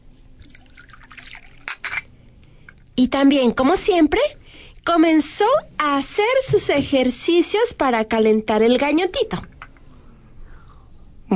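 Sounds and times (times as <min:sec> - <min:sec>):
water poured into a drinking glass: 0:00.3 - 0:02.1
speech: 0:03.0 - 0:09.5.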